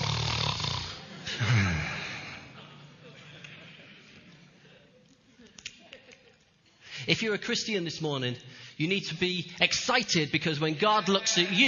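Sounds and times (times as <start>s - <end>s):
man's voice imitating snoring: 0.0s - 1.9s
laughter: 1.0s - 6.7s, 10.8s - 11.6s
speech: 7.1s - 11.6s.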